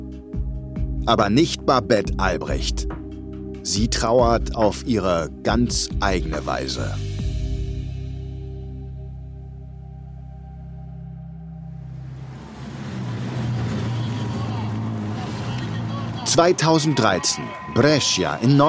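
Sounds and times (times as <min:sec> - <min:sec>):
speech: 0:01.0 - 0:03.0, 0:03.6 - 0:07.1, 0:16.3 - 0:18.6
vintage rally car engines roaring: 0:11.9 - 0:18.6.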